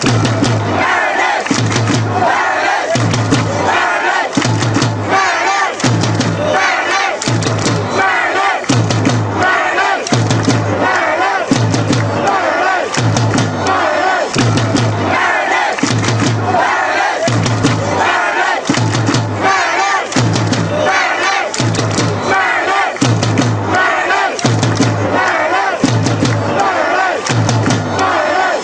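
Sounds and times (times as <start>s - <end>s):
football fans chanting: 0.0s - 28.6s
clapping: 1.3s - 2.0s, 4.2s - 4.9s, 5.7s - 6.2s, 6.9s - 7.8s, 8.6s - 9.2s, 10.0s - 13.5s, 15.6s - 16.4s, 18.6s - 19.2s, 19.8s - 20.6s, 21.2s - 22.2s, 22.8s - 23.6s, 24.3s - 28.2s.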